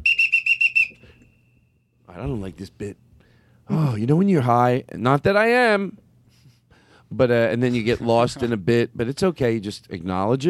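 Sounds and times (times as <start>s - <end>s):
shrill whistle blasts: 0.0s - 2.0s
speech: 2.1s - 3.0s, 3.7s - 6.0s, 7.1s - 10.4s.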